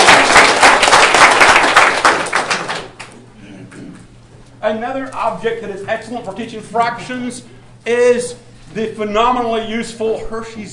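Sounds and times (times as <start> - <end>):
class clapping together in a classroom: 0.0 - 3.2
speech: 4.6 - 10.7.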